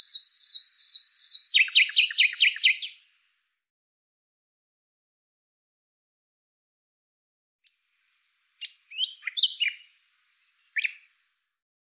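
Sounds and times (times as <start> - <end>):
bird song: 0.0 - 3.2, 7.6 - 11.2.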